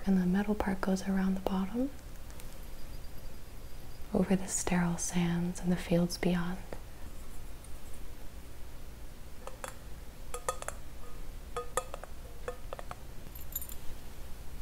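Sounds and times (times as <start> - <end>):
low steady hum: 0.0 - 14.5
speech: 0.1 - 2.0, 4.1 - 6.8
heavy brass keys jangling: 13.3 - 13.9.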